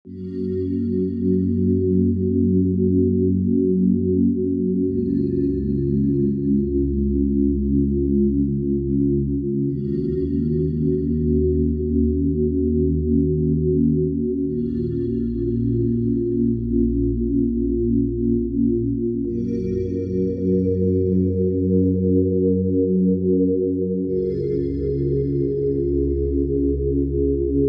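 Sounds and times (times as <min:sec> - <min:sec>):
summer rain melody background music for meditation and yoga: 0:00.1 - 0:27.6.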